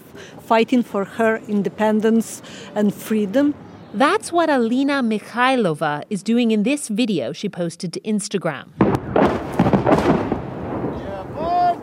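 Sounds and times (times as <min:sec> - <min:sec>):
speech: 0:00.3 - 0:09.3
incoming artillery fire on the front lines in central Ukraine: 0:08.8 - 0:11.8.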